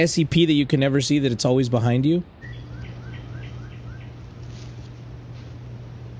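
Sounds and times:
speech: 0.0s - 2.4s
steady low hum: 2.2s - 6.1s
birds chirping: 2.3s - 5.3s.

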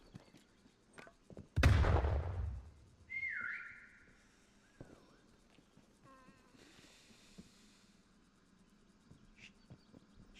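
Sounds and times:
loud sharp bang: 1.6s - 2.8s
whistle blast: 3.1s - 4.0s.

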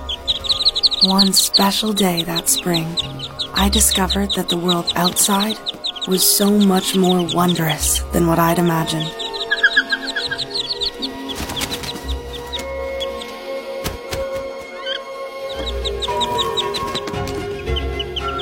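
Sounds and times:
day-old wood ducklings peeping: 0.0s - 18.3s
speech: 1.0s - 9.2s.

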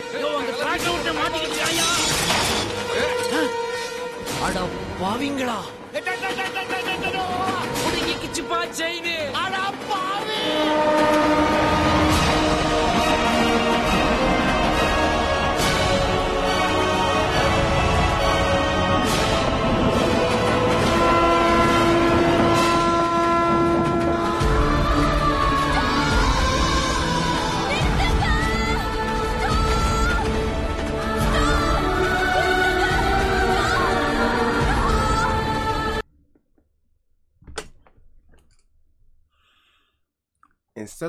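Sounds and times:
speech: 0.1s - 3.6s, 4.4s - 11.6s
train rumbling loudly: 6.0s - 36.0s
train horn sounding long sustained blasts: 10.2s - 15.8s, 19.0s - 26.4s.

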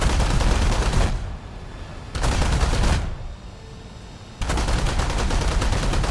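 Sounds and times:
aircraft 23mm and 37mm cannons firing in a video game: 0.0s - 1.4s, 2.1s - 3.3s, 4.4s - 6.0s.

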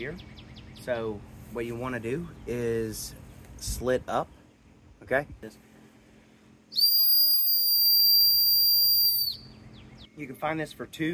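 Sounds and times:
speech: 0.0s - 4.4s, 5.0s - 5.7s, 10.2s - 11.1s
3D printed dog whistle being blown: 6.7s - 9.4s.

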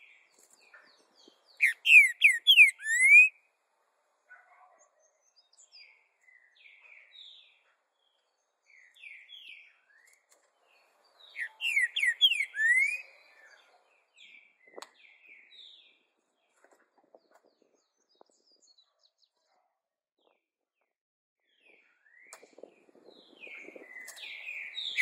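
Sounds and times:
green-winged saltator whistled song: 1.5s - 3.4s, 11.2s - 16.0s, 21.5s - 25.0s.

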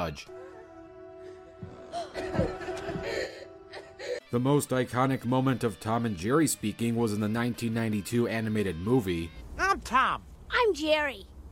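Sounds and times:
speech: 0.1s - 0.4s, 4.3s - 11.5s
heavy raspy breathing: 3.0s - 4.3s.

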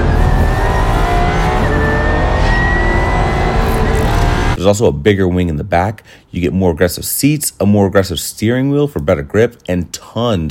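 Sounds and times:
race car 2-liter V8 engine with three electric motors roaring: 0.0s - 4.6s
speech: 4.6s - 10.4s.

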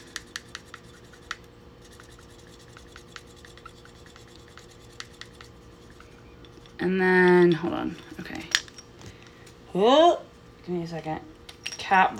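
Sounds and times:
dry erase marker rubbing permanent marker off glass: 0.0s - 6.8s
speech: 6.8s - 8.6s, 9.8s - 11.3s, 11.9s - 12.1s.

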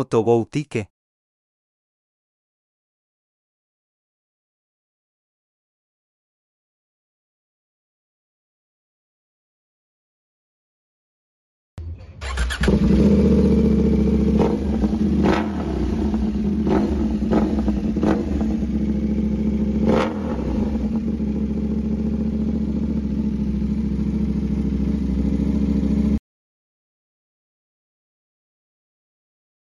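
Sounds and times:
speech: 0.0s - 0.9s
KTM Duke 790 or 890 motorcycle engine starting, idling and revving: 11.8s - 26.2s.

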